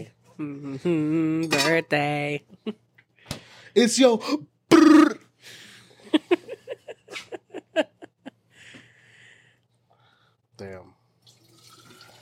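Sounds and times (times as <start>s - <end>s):
speech: 0.0s - 2.8s, 3.7s - 6.3s
water pouring into a glass: 11.2s - 12.1s.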